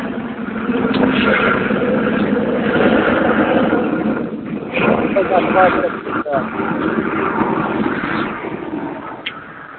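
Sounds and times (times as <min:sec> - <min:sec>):
low-flying airplane roaring overhead on approach: 0:00.0 - 0:09.7
voices: 0:04.8 - 0:06.5.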